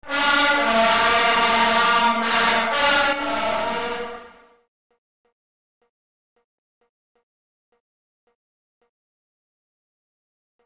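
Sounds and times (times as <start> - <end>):
short fanfare: 0.0 - 4.5.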